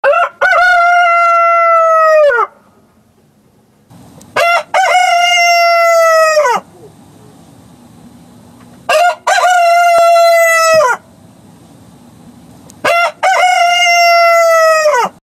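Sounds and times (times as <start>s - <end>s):
rooster crowing: 0.0s - 2.6s, 4.4s - 6.7s, 8.9s - 11.1s, 12.8s - 15.2s.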